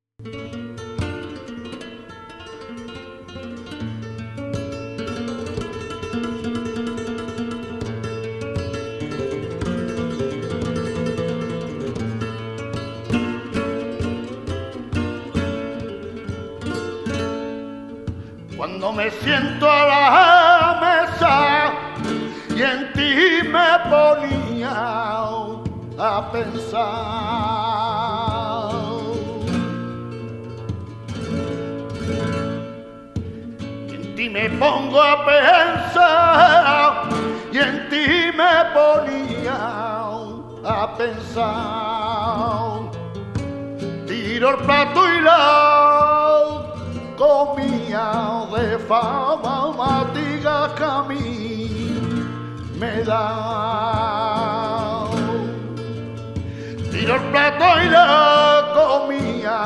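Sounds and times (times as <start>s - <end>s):
guitar playing a soleá: 0.0s - 59.6s
person singing a soleá: 18.4s - 29.8s, 33.9s - 43.0s, 44.0s - 59.6s.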